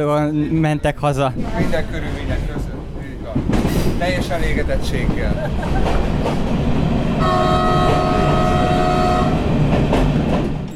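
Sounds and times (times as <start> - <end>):
speech: 0.0 - 2.7, 3.3 - 8.3
moving train rumbling and rattling heard from inside a carriage: 0.2 - 10.7
laughter: 4.9 - 6.5
train horn: 7.2 - 9.6.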